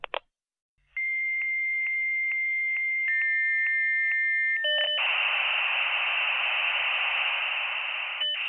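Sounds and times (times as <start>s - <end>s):
dial-up modem handshake tones chirps and warbles: 1.0s - 8.4s
loud hissing static from dial-up modem: 5.0s - 8.4s.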